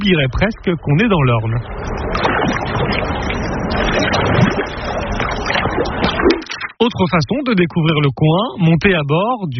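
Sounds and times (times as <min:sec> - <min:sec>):
speech: 0:00.0 - 0:03.1, 0:05.8 - 0:09.5
splashing water from kayaks and water skiers on a large lake: 0:00.0 - 0:06.8
rumbling boat motor on a large lake in the Orne, Normandy, France: 0:01.2 - 0:06.0.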